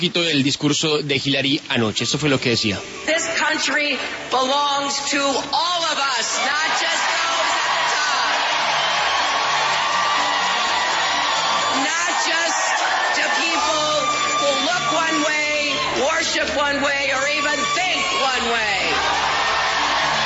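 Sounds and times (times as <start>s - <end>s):
speech: 0.0s - 7.1s, 16.0s - 19.0s
large rally crowd cheering and shouting: 5.5s - 20.2s.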